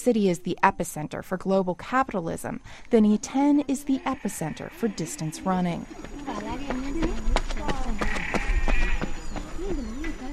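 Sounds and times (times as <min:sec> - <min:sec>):
speech: 0:00.0 - 0:06.6
goats bleating on a stadium infield in Iten Kenya: 0:03.8 - 0:09.3
hooves clopping on hard ground: 0:04.0 - 0:10.3.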